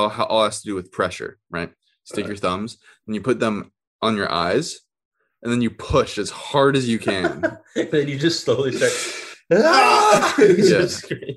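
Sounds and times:
speech: 0.0s - 11.3s
laughter: 6.9s - 11.3s
long drawn-out moaning yawn: 8.8s - 11.0s.

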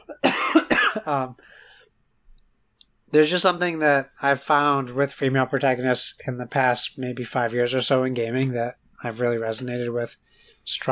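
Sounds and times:
person coughing and clearing throat because something is stuck in it: 0.0s - 1.4s
speech: 1.0s - 1.5s, 3.1s - 10.9s.

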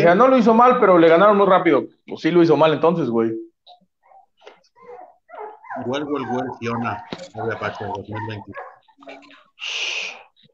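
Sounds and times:
speech: 0.0s - 3.5s, 5.8s - 10.0s
small dog whimpering: 4.0s - 9.3s.

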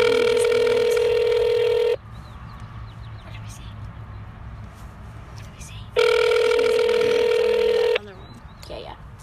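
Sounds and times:
outgoing call ringback tones over a phone speaker: 0.0s - 2.0s, 6.0s - 8.0s
faint birdsong: 0.0s - 9.0s
low hum: 0.0s - 9.0s.

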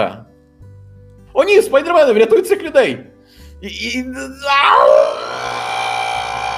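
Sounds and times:
speech: 0.0s - 0.3s, 1.4s - 5.6s
person yelling loudly: 4.1s - 6.5s.

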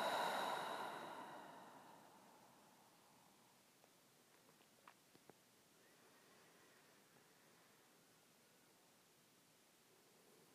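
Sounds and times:
slow deep breath out: 0.0s - 3.2s.

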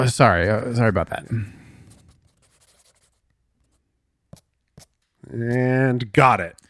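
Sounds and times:
speech: 0.0s - 1.6s, 5.3s - 6.6s
pen scratching on paper: 0.8s - 5.0s.

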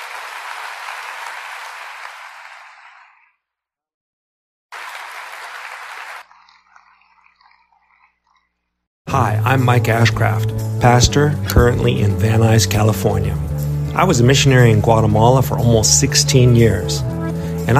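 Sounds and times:
audience clapping loudly: 0.0s - 3.3s, 4.7s - 7.1s
speech: 9.1s - 17.7s.

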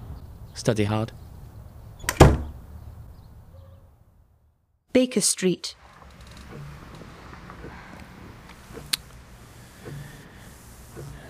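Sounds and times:
speech: 0.6s - 1.2s, 5.0s - 5.9s
door closing: 2.0s - 2.6s, 5.8s - 9.1s.

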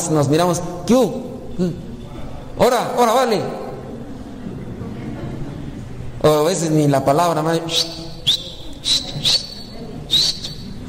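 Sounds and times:
speech: 0.0s - 1.9s, 2.6s - 3.6s, 6.2s - 8.0s
person whistling short high chirps as a greeting: 7.7s - 10.8s.

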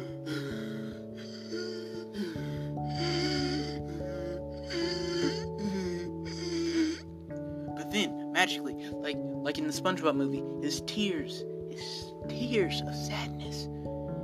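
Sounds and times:
voice imitating a fish-like creature gasping for air: 0.0s - 7.1s
steady music: 0.0s - 14.2s
speech: 9.5s - 13.8s.

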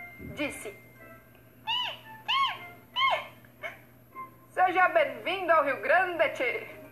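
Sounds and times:
speech: 0.4s - 0.9s, 4.7s - 6.8s
southern lapwing giving shrill piercing calls: 1.7s - 3.4s.

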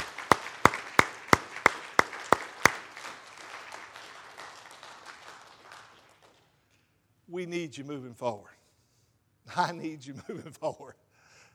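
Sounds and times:
scattered crowd applause: 0.0s - 6.5s
sharp evenly spaced claps: 0.0s - 6.8s
speech: 7.3s - 8.6s, 9.5s - 11.0s.

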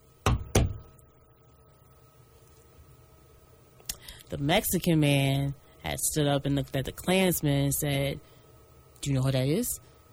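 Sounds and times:
sharp knocks on a door: 0.3s - 0.9s
speech: 4.3s - 8.3s, 9.0s - 9.9s.

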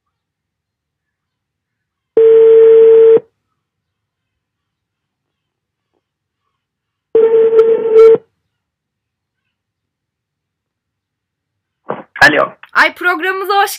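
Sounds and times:
telephone ringing tone on a call line: 2.2s - 3.2s, 7.2s - 8.2s
speech: 12.4s - 13.7s.

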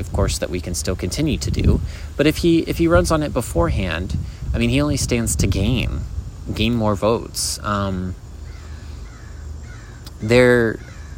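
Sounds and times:
quiet hum: 0.0s - 11.1s
speech: 0.2s - 8.2s, 10.2s - 10.9s
crow cawing: 8.4s - 11.1s.

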